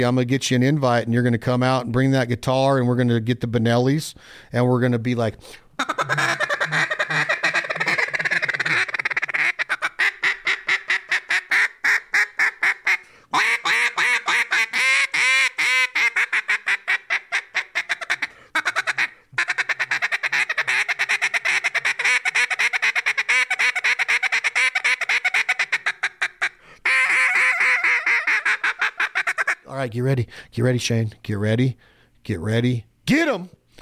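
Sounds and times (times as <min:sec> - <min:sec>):
speech: 0:00.0 - 0:06.8, 0:29.9 - 0:33.6
duck call blown with loud rapid quacks: 0:05.8 - 0:29.7.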